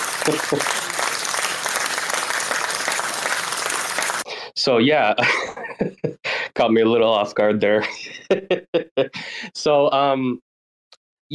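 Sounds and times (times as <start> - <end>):
crowd applauding: 0.0 - 4.3
speech: 0.3 - 0.8, 4.6 - 10.5
laughter: 4.7 - 6.7, 7.7 - 9.3.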